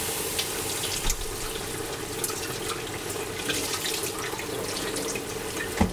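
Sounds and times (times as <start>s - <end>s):
kitchen faucet running in a continuous rushing stream: 0.0s - 5.9s.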